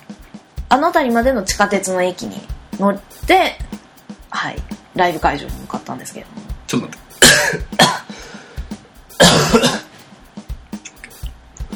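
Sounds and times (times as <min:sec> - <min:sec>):
speech: 0:00.1 - 0:03.7, 0:04.3 - 0:07.7
throat clearing: 0:07.2 - 0:08.1, 0:09.2 - 0:09.9
person coughing after choking: 0:07.2 - 0:08.3, 0:09.2 - 0:09.9.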